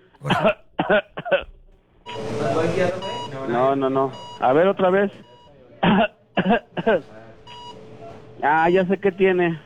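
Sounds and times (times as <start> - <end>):
man coughing harshly imitating an old man with a bad cough: 0.0 - 1.6, 5.8 - 7.0
speech: 0.2 - 1.1, 3.8 - 5.3, 6.0 - 7.2, 8.4 - 9.6.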